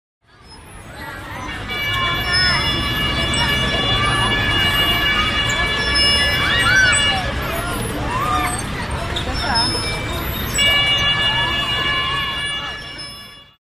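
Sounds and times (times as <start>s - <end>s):
boys and girls playing in a park: 0.2s - 13.6s.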